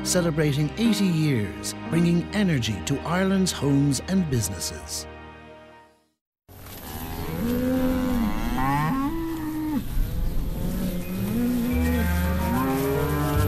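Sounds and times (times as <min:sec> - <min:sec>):
speech: 0:00.0 - 0:05.1
dairy cows mooing in a field: 0:06.8 - 0:13.4.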